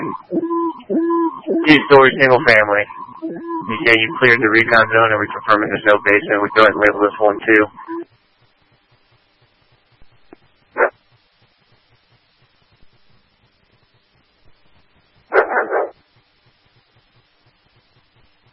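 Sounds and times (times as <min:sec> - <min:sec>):
faint steady low hum: 0:00.0 - 0:18.5
speech: 0:01.6 - 0:07.9
dog barking in the backyard of a two-story single-family house: 0:15.3 - 0:16.0.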